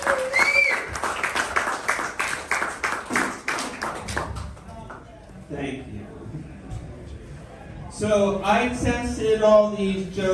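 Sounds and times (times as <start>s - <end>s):
audience applause for a comedian: 0.0s - 5.1s
speech: 8.0s - 10.3s.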